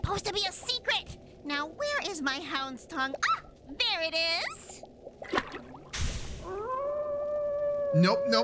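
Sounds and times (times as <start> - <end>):
speech: 0.1 - 4.6, 7.9 - 8.4
person howling like a dog: 6.5 - 8.4.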